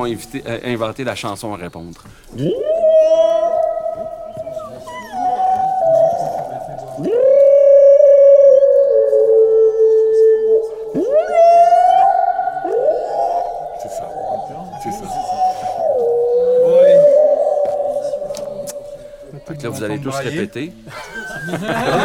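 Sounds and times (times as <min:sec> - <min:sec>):
speech: 0:00.0 - 0:03.2, 0:19.8 - 0:22.0
humpback whale song: 0:02.4 - 0:19.9
laughter: 0:20.8 - 0:22.0.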